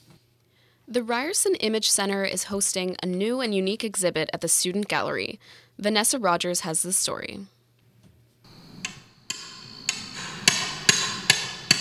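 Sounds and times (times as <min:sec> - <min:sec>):
speech: 0:00.9 - 0:07.6
hammer striking metal: 0:08.5 - 0:11.7.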